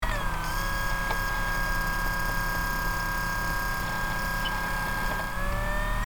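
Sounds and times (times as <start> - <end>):
CD or DVD drive spinning motor whirring: 0.0 - 6.1.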